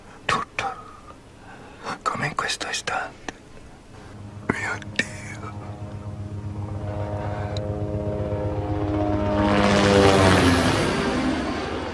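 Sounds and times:
speech: 2.5s - 3.3s, 4.7s - 5.1s
police helicopter rotor and engine drone: 3.7s - 11.9s.

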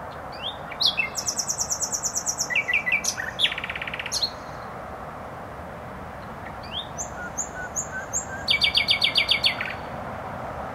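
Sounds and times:
nightingale singing in bushes in Bródno-Podgrodzie, Warsaw, Poland: 0.3s - 4.7s, 6.4s - 9.9s.

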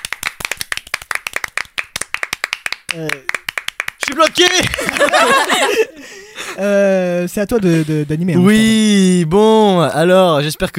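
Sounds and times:
people applauding themselves at the end of a shoot: 0.0s - 5.8s
speech: 2.9s - 3.4s, 4.1s - 10.7s
laughter: 4.4s - 6.6s.

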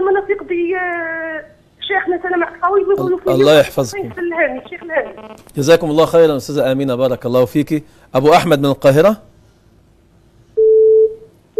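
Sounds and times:
speech: 2.1s - 9.3s
telephone busy tone after a caller's line dropped: 10.6s - 11.5s.

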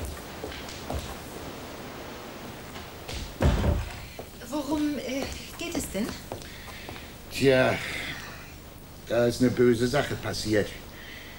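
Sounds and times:
faint rustling and shuffling: 0.0s - 7.4s
door shut against a draught: 3.1s - 4.2s
speech: 7.4s - 8.0s, 9.1s - 10.8s.

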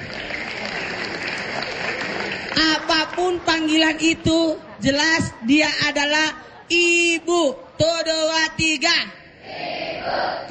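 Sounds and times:
audience at a religious lecture applauding: 0.0s - 3.7s
speech: 3.2s - 10.4s.

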